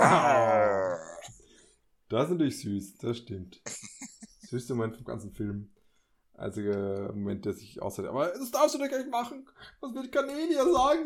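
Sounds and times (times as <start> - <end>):
person voicing a low groaning growl imitating a bear: 0.0 - 1.3
speech: 2.1 - 3.8, 4.5 - 5.8, 6.4 - 11.0.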